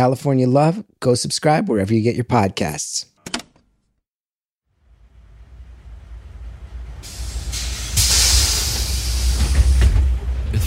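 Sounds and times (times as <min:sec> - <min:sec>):
speech: 0:00.0 - 0:03.1
city bus engine rumbling on Venice Boulevard: 0:04.9 - 0:10.6
city bus air brakes hissing: 0:07.0 - 0:10.2.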